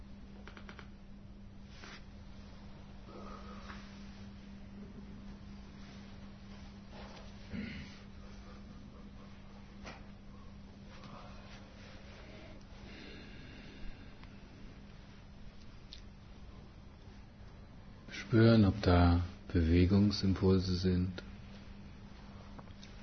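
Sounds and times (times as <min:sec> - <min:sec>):
faint hiss: 0:00.0 - 0:23.0
steady low hum: 0:00.0 - 0:23.0
slow deep breathing in and out: 0:02.6 - 0:05.0, 0:05.7 - 0:14.9
speech: 0:18.2 - 0:21.3.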